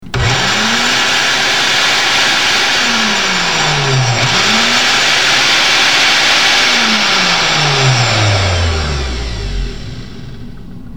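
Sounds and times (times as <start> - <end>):
blender: 0.0 - 10.7.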